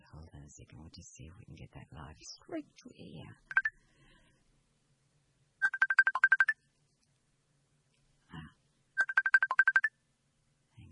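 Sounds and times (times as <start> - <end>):
speech: 0.5 - 3.6
phone ringtone of incoming call during live radio broadcast: 3.5 - 3.7, 5.6 - 6.6, 9.0 - 9.9.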